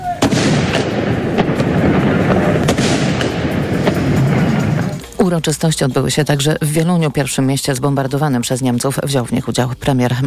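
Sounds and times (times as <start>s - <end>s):
continuous heavy rumble and echo: 0.0s - 5.6s
ceremonial cannon salute volleys: 0.1s - 5.0s
speech: 5.3s - 10.2s.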